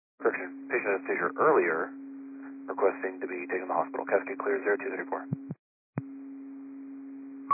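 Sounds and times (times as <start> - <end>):
steady low hum: 0.2 - 7.4
speech: 0.3 - 2.0, 2.7 - 5.5
radio clicks and blips of the carrier dropping out: 2.7 - 5.6.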